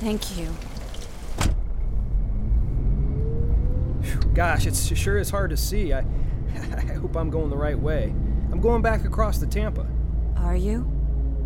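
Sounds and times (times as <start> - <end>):
speech: 0.0 - 0.7, 4.4 - 11.0
car driving along a road with low engine rumble: 0.0 - 11.4
road hum: 0.0 - 11.4
door shutting: 0.8 - 1.7.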